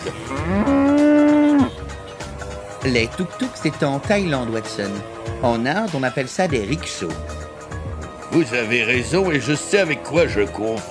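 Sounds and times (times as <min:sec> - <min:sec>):
cow mooing: 0:00.1 - 0:02.0, 0:04.8 - 0:06.0
speech: 0:02.8 - 0:07.5, 0:08.3 - 0:10.9.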